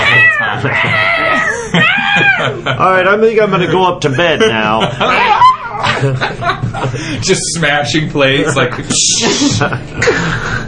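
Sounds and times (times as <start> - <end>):
cat yowling while attacking a person's arm: 0.0 - 2.6, 5.1 - 6.0
laughter: 0.0 - 7.4, 8.2 - 10.6
speech: 0.5 - 1.1, 2.4 - 10.6.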